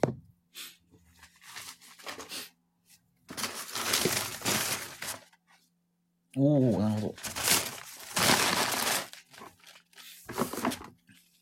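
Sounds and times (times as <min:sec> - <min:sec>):
paper packing material crumpling inside an opened cardboard box: 0:01.1 - 0:02.5, 0:03.3 - 0:05.4, 0:06.9 - 0:11.0
speech: 0:06.4 - 0:07.3.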